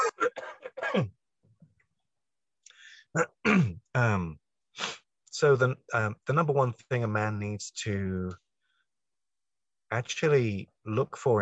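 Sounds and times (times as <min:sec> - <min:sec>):
person clearing throat: 0:00.0 - 0:01.1, 0:03.2 - 0:04.2
speech: 0:00.9 - 0:01.2, 0:03.1 - 0:08.4, 0:09.9 - 0:11.4.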